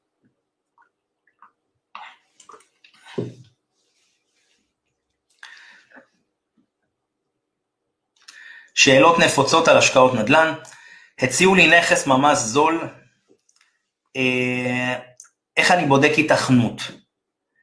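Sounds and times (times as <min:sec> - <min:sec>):
person sipping and swallowing water: 0:00.6 - 0:03.6
bottle being set down with a soft thud: 0:03.0 - 0:03.5
speech: 0:03.2 - 0:03.4, 0:08.8 - 0:13.0, 0:14.1 - 0:17.0
person breathing between sips: 0:05.4 - 0:06.1, 0:08.2 - 0:08.8, 0:10.7 - 0:11.2.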